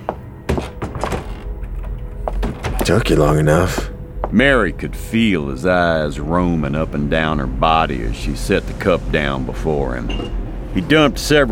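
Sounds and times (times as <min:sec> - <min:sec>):
back door closing as a man leaves: 0:00.5 - 0:03.9, 0:10.0 - 0:10.5
low rumble: 0:01.4 - 0:11.4
speech: 0:02.9 - 0:11.4.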